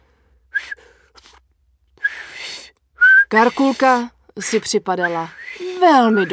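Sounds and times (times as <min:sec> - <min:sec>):
clumsy unpracticed whistling: 0:02.0 - 0:04.0, 0:05.0 - 0:06.3
speech: 0:03.3 - 0:06.3.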